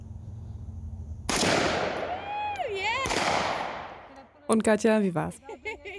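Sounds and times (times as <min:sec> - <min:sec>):
lightweight rifle gunshots at a shooting range: 0:01.3 - 0:02.1, 0:03.0 - 0:04.1
speech: 0:04.5 - 0:05.5
laughter: 0:05.4 - 0:05.9.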